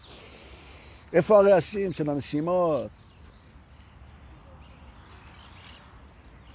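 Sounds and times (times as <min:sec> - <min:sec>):
steady low noise: 0:00.0 - 0:06.5
speech: 0:01.1 - 0:03.1
bird chirping: 0:02.0 - 0:06.5.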